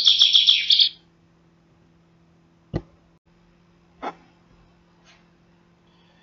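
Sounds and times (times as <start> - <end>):
chaffinch singing: 0.0 - 1.1.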